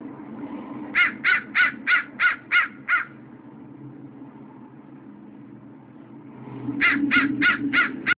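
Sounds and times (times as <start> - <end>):
low steady hum: 0.0 - 8.1
harsh clipped bird calls: 1.0 - 3.2, 6.8 - 8.1.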